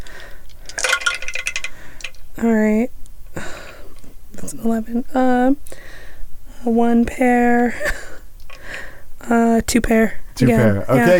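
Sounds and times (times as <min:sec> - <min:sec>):
dice clattering across a dice tray: 0:00.6 - 0:02.2
speech: 0:02.4 - 0:03.0, 0:04.4 - 0:06.0, 0:06.6 - 0:08.0, 0:09.3 - 0:11.1.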